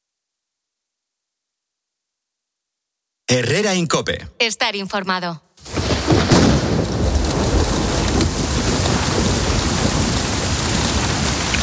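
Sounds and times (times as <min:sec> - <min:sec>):
speech: 0:03.3 - 0:05.5
low rumble of thunder rolling: 0:05.6 - 0:11.6
steady heavy rain hissing: 0:05.6 - 0:11.6.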